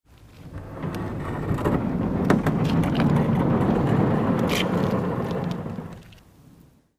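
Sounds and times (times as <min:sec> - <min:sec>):
metal barn door sliding open: 0:00.5 - 0:06.0.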